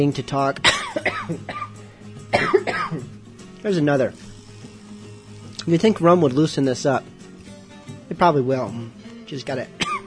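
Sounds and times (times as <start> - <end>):
speech: 0.0 - 1.6, 2.3 - 4.3, 5.6 - 7.1, 8.1 - 9.8
person coughing: 0.6 - 3.1, 9.8 - 10.0.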